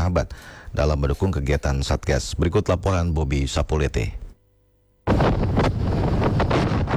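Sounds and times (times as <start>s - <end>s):
speech: 0.1s - 4.2s
wind buffeting a microphone outdoors aboard a ship: 5.1s - 6.9s.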